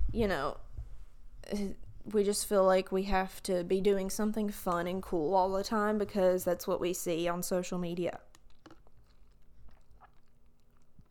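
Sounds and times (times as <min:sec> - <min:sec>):
low steady hum: 0:00.0 - 0:11.0
speech: 0:00.1 - 0:00.7, 0:01.4 - 0:08.3
wet mouth clicks: 0:08.2 - 0:11.0
person sipping a drink: 0:08.3 - 0:11.0
swallow: 0:08.3 - 0:11.0.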